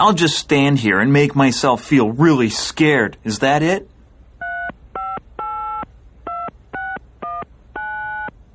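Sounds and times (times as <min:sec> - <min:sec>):
speech: 0:00.0 - 0:03.9
telephone keypad tones dialing a phone call: 0:04.4 - 0:08.4.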